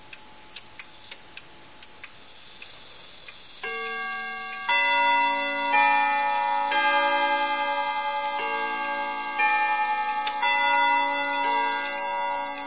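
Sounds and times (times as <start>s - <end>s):
clock chime for 30 minutes: 3.6s - 12.6s.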